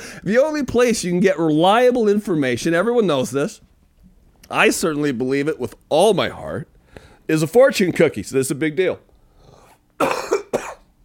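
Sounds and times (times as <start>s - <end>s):
speech: 0.2s - 3.6s, 4.5s - 6.7s, 7.3s - 9.1s, 10.0s - 10.3s
person coughing harshly: 10.0s - 10.9s.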